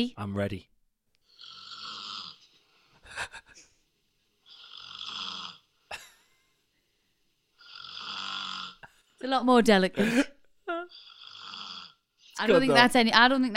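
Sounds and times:
speech: 0.0s - 0.8s, 9.2s - 10.3s, 12.4s - 13.5s
woman snoring raspily: 1.2s - 2.4s, 4.4s - 5.7s, 7.6s - 9.0s, 10.0s - 12.8s.

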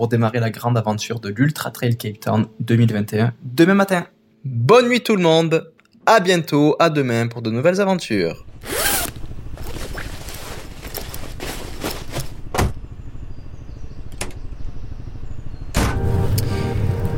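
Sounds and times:
speech: 0.0s - 8.8s
road and engine rumble inside a moving car: 8.4s - 17.1s
zipper-like rasps and rustles: 8.6s - 12.5s.

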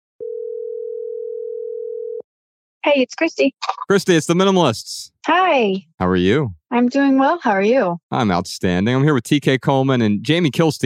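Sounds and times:
telephone ringing tone while placing a call: 0.2s - 2.2s
speech: 2.8s - 10.8s.

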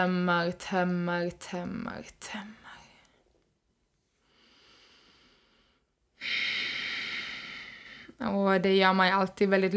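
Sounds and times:
speech: 0.0s - 2.6s, 6.2s - 6.6s, 8.2s - 9.7s
deep breath drawn in through the nose: 4.2s - 8.2s.

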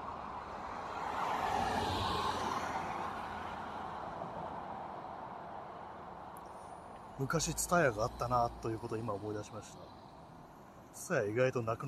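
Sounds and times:
continuous roar of passing car traffic: 0.0s - 10.9s
speech: 7.2s - 10.0s, 11.0s - 11.8s.

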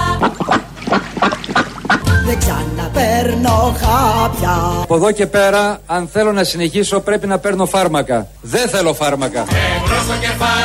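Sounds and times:
duck quacking: 0.0s - 2.2s
speech: 3.2s - 10.6s.

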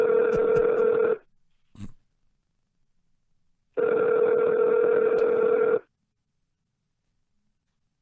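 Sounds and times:
telephone ringback tone through the line on an outgoing call: 0.0s - 1.2s, 3.8s - 5.9s.

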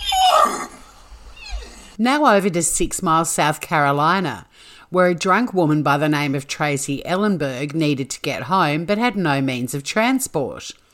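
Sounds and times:
horse whinnying: 0.0s - 2.0s
speech: 2.0s - 10.8s.

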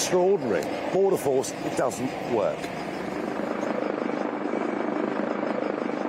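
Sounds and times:
helicopter circling overhead with rotor chopping: 0.0s - 6.0s
speech: 0.1s - 2.9s.

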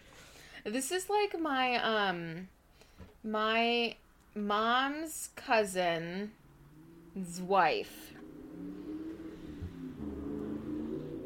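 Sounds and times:
speech: 0.6s - 2.6s, 3.2s - 6.4s, 7.2s - 8.7s
car engine humming outside as it drives past: 6.3s - 11.2s.

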